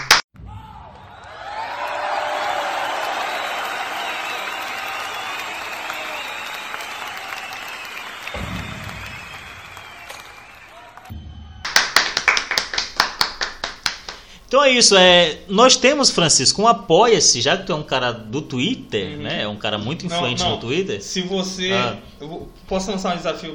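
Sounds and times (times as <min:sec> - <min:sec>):
sharp rhythmic hand claps: 0:00.0 - 0:00.2, 0:03.0 - 0:14.3
large crowd applauding: 0:01.0 - 0:14.3
speech: 0:14.5 - 0:23.5.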